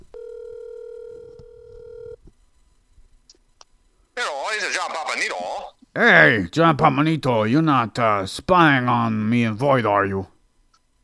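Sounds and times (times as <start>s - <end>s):
telephone dial tone: 0.0s - 2.2s
faint noise: 0.0s - 11.0s
speech: 4.6s - 10.3s.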